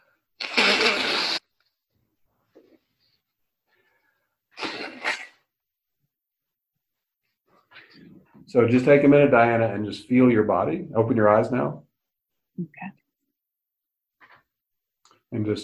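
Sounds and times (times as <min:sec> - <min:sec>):
person blowing nose: 0:00.0 - 0:01.7, 0:04.5 - 0:05.5
speech: 0:07.7 - 0:11.8, 0:12.6 - 0:13.0, 0:15.3 - 0:15.6.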